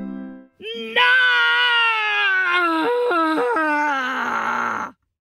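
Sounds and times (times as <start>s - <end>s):
girl screaming angrily: 0.6s - 5.0s.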